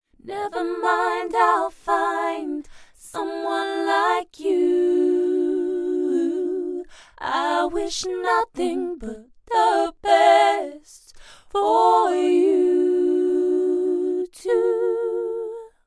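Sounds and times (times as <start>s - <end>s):
doubled vocal harmony recorded with a U87 microphone: 0.2s - 15.8s.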